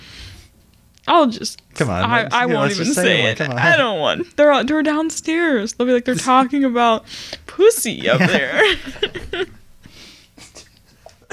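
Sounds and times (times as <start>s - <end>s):
speech: 1.1s - 9.6s
laughter: 8.0s - 9.6s, 10.4s - 11.3s
harsh wheezy cough: 10.4s - 11.3s.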